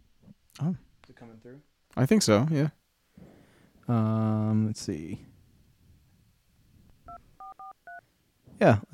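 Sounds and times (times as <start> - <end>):
faint hum: 0.0 - 8.9
speech: 0.6 - 2.8, 3.9 - 5.3, 8.6 - 8.9
touch-tone dialing beeps of a connected phone: 7.1 - 8.0.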